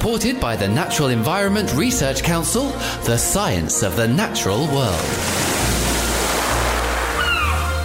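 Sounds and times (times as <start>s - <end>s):
speech: 0.0s - 5.7s
ocean waves and surf at sea: 5.0s - 7.8s.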